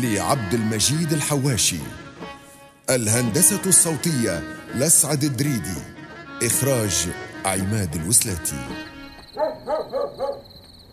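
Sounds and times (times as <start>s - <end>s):
speech: 0.0s - 2.1s, 2.9s - 10.2s
steady high-pitched insect-like hum as night ambience: 9.0s - 10.9s
dogs barking at night: 9.2s - 10.5s.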